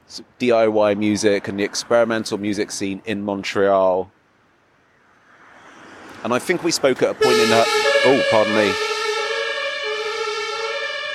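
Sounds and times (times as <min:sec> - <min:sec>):
speech: 0:00.1 - 0:04.2, 0:06.2 - 0:08.9
emergency siren wailing outside: 0:07.1 - 0:11.1.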